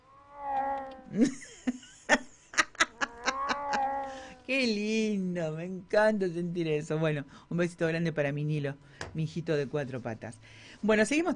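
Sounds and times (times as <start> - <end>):
cat meowing: 0.0 - 1.2, 3.0 - 4.4
speech: 1.1 - 1.5, 4.5 - 11.3.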